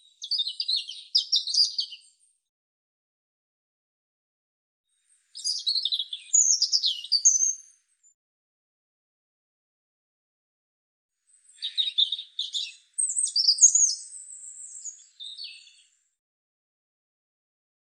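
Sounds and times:
European robin song: 0:00.0 - 0:02.4, 0:05.1 - 0:08.2, 0:11.3 - 0:16.0.

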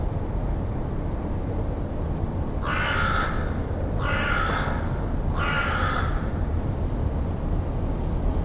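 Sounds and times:
steady low background rumble: 0:00.0 - 0:08.4
bird cawing: 0:02.6 - 0:06.6.

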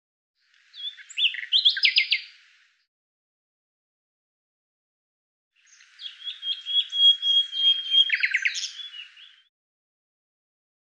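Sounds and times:
Common Nightingale song phrase: 0:00.4 - 0:02.9, 0:05.6 - 0:09.5.

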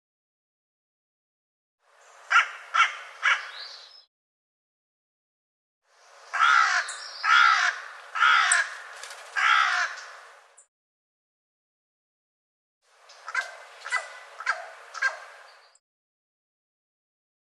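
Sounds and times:
bird giving harsh cawing calls: 0:02.3 - 0:03.6, 0:06.3 - 0:10.2, 0:13.2 - 0:15.3.

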